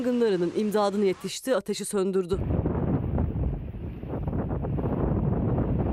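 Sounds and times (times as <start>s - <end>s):
speech: 0.0s - 2.6s
strong storm wind in Muğla buffeting a microphone: 2.3s - 5.9s.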